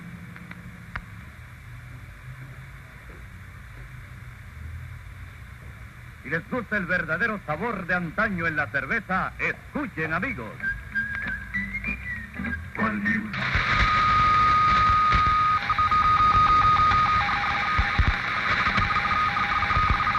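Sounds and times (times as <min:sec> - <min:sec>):
noisy hum: 0:00.0 - 0:20.1
speech: 0:06.3 - 0:10.8, 0:12.9 - 0:13.6
whistled melody: 0:10.6 - 0:13.2
telephone ringing with an electronic trill: 0:13.4 - 0:20.1.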